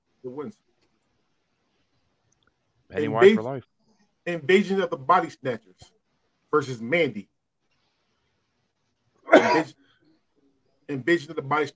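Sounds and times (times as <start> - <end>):
speech: 0.2 - 0.7, 2.9 - 7.3, 9.4 - 9.8, 10.9 - 11.7
man choking and coughing: 9.3 - 9.7.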